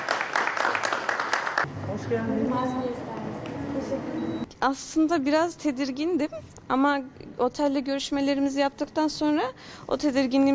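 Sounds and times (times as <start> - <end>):
group of people applauding at a hotel in Antalya: 0.0 - 1.7
speech: 2.1 - 10.5.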